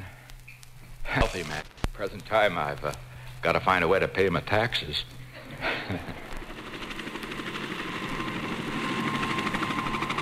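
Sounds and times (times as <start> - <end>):
speech: 1.2 - 6.2
laughter: 5.2 - 6.5
helicopter engine whining and rotor chopping: 5.9 - 10.2.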